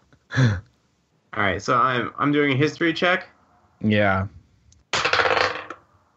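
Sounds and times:
speech: 0.4 - 0.6, 1.4 - 4.4
die clattering and rattling across a hard surface: 4.9 - 5.9.

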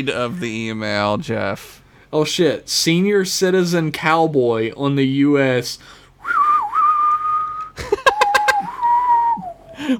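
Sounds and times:
speech: 0.0 - 6.4
person whistling a western movie theme tune: 6.2 - 9.8.

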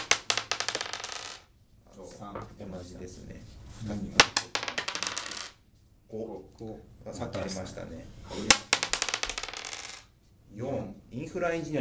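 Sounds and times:
dice rolled on a hard tabletop: 0.0 - 1.5, 4.2 - 5.6, 8.5 - 10.1
speech: 2.2 - 4.6, 6.1 - 8.7, 10.6 - 11.8.

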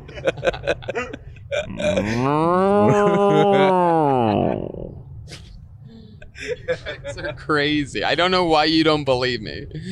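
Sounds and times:
laughter: 0.0 - 5.0, 6.0 - 7.8
speech: 0.2 - 4.0, 6.7 - 9.9
bison letting out a long deep bellowing groan: 1.6 - 5.0.

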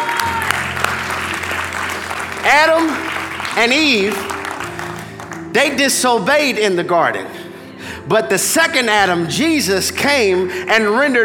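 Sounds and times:
audience giving light polite applause in a large room: 0.0 - 5.8
speech: 2.4 - 4.3, 5.5 - 7.4, 8.1 - 11.2.

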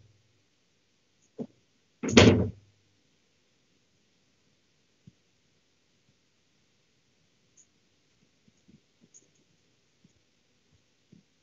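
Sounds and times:
door opening clunk: 2.0 - 2.6.

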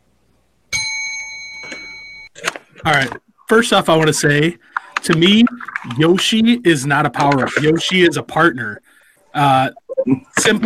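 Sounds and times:
small metal bell ringing: 0.7 - 2.3
speech: 2.8 - 10.6.

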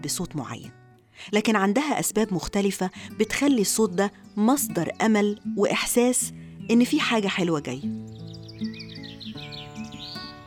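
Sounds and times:
speech: 0.0 - 8.1
small birds chirping and tweeting: 2.8 - 10.4.

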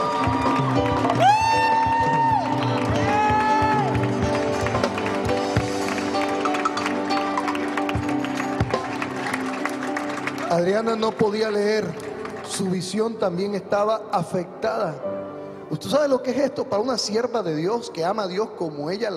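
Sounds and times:
audience applauding: 0.0 - 13.2
sustained musical backdrop: 0.0 - 16.2
speech: 10.9 - 12.0, 12.6 - 15.2, 15.8 - 19.1.

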